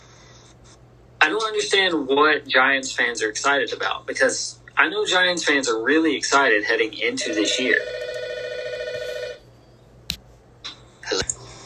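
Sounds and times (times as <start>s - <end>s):
speech: 1.2s - 8.2s
phone ringing with a steady electronic tone: 7.1s - 9.4s.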